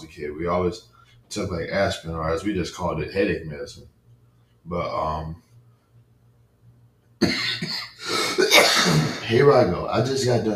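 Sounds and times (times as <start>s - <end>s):
speech: 0.2s - 4.0s, 4.6s - 5.4s, 8.6s - 10.5s
person coughing in a harsh rough burst: 7.2s - 9.3s.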